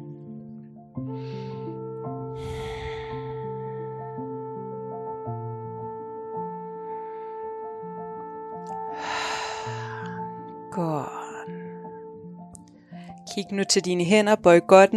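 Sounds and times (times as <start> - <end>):
soft sustained music: 0.0 - 14.9
deep airy breaths in and out: 1.1 - 1.7, 2.4 - 4.0, 8.9 - 10.3
speech: 10.8 - 11.2, 13.4 - 14.9.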